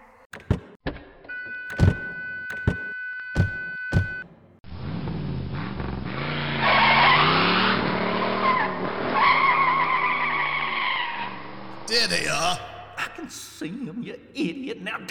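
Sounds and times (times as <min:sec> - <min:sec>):
sharp thuds and clicks: 0:00.3 - 0:04.2
car engine roaring as the vehicle speeds off: 0:04.6 - 0:12.1
car tires squealing while skidding: 0:04.7 - 0:12.1
speech: 0:13.3 - 0:15.0.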